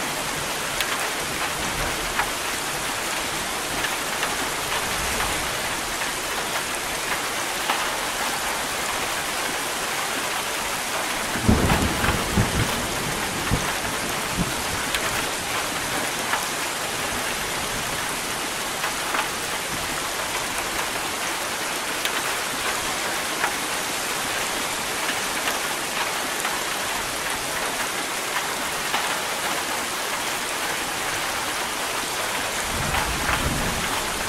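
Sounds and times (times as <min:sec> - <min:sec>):
steady dense rain: 0:00.0 - 0:34.2
low rumbles of thunder: 0:11.3 - 0:14.9.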